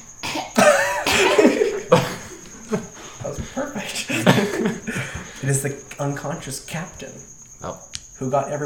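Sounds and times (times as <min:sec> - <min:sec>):
person imitating a cough: 0:00.2 - 0:02.3
speech: 0:00.4 - 0:00.7, 0:05.4 - 0:08.6
laughter: 0:00.6 - 0:05.4.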